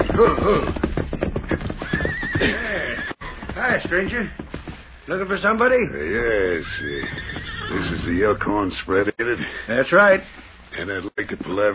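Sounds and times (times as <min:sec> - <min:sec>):
horse whinnying: 0:00.0 - 0:03.7, 0:05.9 - 0:08.5
horse hooves clip-clopping while pulled to a halt: 0:00.0 - 0:08.7
speech: 0:00.2 - 0:00.8, 0:02.4 - 0:02.8, 0:03.6 - 0:04.5, 0:05.1 - 0:11.7.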